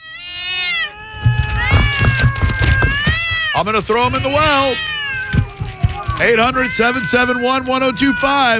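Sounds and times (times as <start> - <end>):
cats meowing: 0.0 - 8.5
low rumbling noise: 1.1 - 7.8
speech: 3.6 - 4.9, 6.2 - 8.5.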